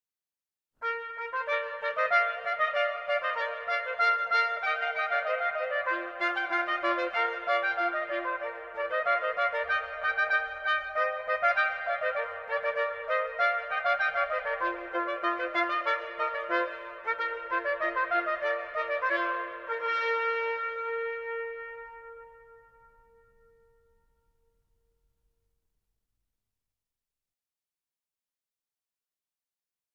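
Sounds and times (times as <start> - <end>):
trumpet tune: 0.8 - 24.3.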